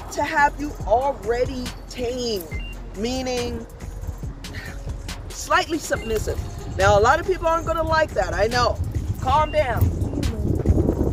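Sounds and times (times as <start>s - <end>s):
wind buffeting microphone outdoors: 0.0s - 11.1s
speech: 0.2s - 3.8s, 5.4s - 10.0s
high chirpy vocal sounds: 10.1s - 10.7s.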